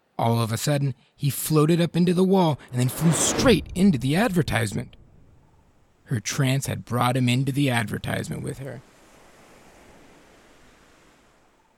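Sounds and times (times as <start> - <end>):
speech: 0.2 - 5.0, 6.1 - 8.9
small ocean waves rushing onto a beach in a tropical location: 2.7 - 5.6, 8.8 - 11.7.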